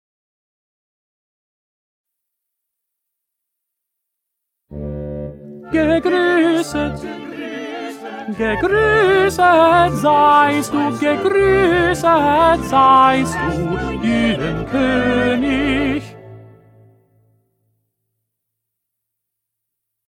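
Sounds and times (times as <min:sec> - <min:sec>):
first tenor voice singing: 0:05.6 - 0:16.4.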